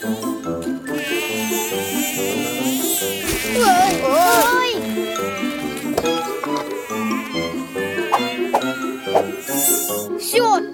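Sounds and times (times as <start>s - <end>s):
mosquitoes buzzing: 0.9s - 10.2s.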